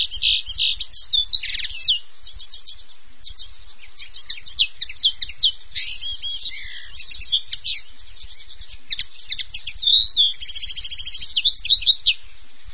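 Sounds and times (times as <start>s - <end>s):
Common Linnet twittering song: 0.0s - 12.7s.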